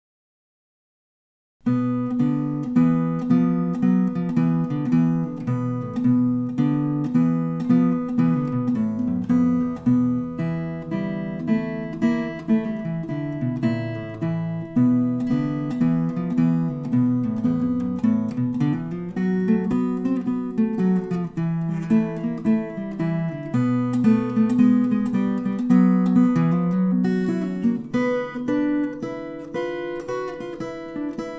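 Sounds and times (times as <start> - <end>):
acoustic open string blues: 1.7 - 31.3.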